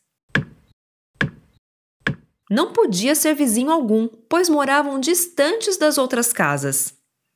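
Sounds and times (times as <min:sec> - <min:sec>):
dull muffled hammering blows: 0:00.4 - 0:00.6, 0:01.2 - 0:02.3
speech: 0:02.5 - 0:07.0.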